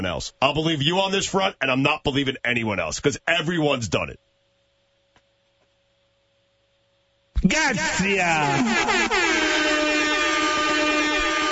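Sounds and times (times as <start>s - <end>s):
speech: 0.0s - 4.3s, 7.4s - 9.6s
laughter: 7.6s - 11.4s
Jamaican air horn sound effect blaring: 8.4s - 11.4s.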